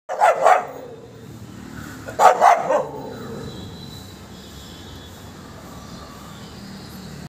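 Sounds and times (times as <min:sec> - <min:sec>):
dog barking: 0:00.1 - 0:01.0, 0:02.1 - 0:03.5.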